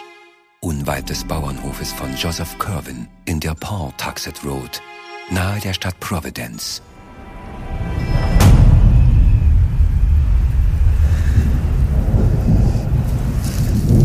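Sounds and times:
speech: 0.8s - 7.0s
distant thunder rumbling from an approaching storm: 8.0s - 14.0s.

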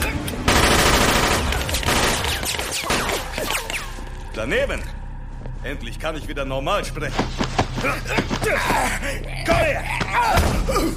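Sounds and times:
rapid gunfire in a warehouse: 0.5s - 3.6s
speech: 4.4s - 5.0s, 5.6s - 10.9s.

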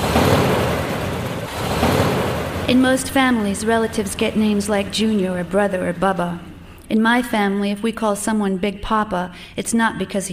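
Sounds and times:
car engine idling in neutral gear: 0.0s - 7.2s
speech: 2.7s - 10.3s.

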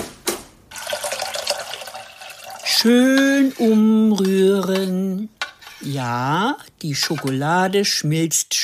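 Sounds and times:
tap running water for a double boiler to melt dark chocolate: 0.7s - 2.8s
speech: 2.8s - 8.6s.

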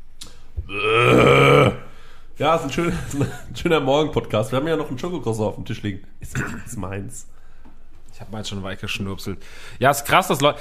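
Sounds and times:
speech: 0.7s - 1.0s, 2.4s - 7.4s, 8.2s - 10.5s
person burping: 0.7s - 1.9s.

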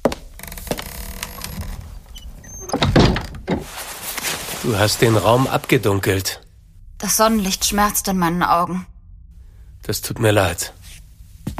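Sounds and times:
wooden door being pushed shut: 0.4s - 3.8s
speech: 4.6s - 6.4s, 7.0s - 8.9s, 9.8s - 10.8s.

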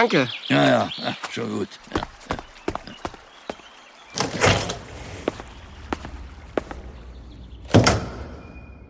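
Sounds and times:
speech: 0.0s - 2.4s
door shutting with a solid thud: 7.7s - 8.4s.

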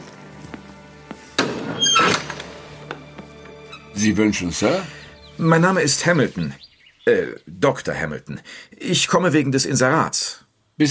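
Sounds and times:
door opening with a rush of noise: 1.4s - 4.3s
speech: 4.0s - 10.8s.

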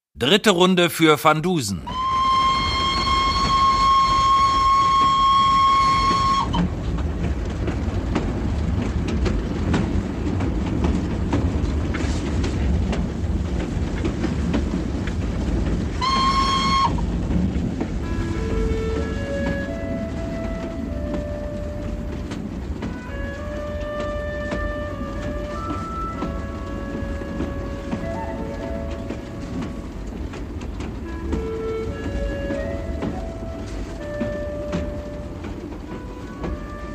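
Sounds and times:
speech: 0.2s - 2.1s
express train rumbling along the rails: 0.2s - 36.9s
sustained high train whistle: 1.9s - 6.7s, 15.9s - 17.3s, 18.0s - 30.0s, 31.0s - 36.9s.

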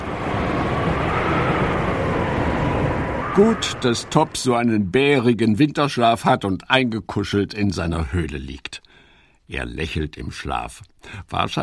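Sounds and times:
low rumbling thunder in a storm: 0.0s - 4.7s
storm wind: 0.0s - 11.6s
speech: 3.4s - 8.9s, 9.5s - 11.6s.

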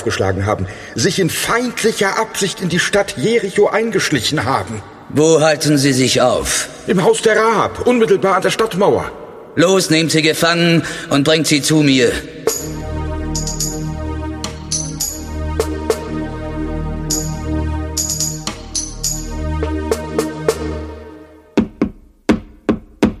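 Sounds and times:
speech: 0.0s - 12.8s
dramatic orchestral music: 12.4s - 21.4s
loud heavy pounding knocks on a door: 21.6s - 23.1s.

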